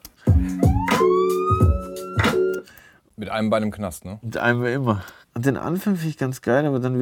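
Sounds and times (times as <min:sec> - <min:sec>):
police car siren wailing with a rising tone: 0:00.6 - 0:02.2
speech: 0:03.3 - 0:06.9.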